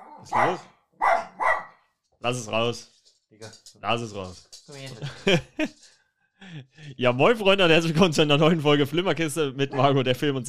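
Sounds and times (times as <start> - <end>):
dog barking: 0.0 - 1.8
speech: 0.2 - 0.7, 2.2 - 10.4
laughter: 5.0 - 5.8.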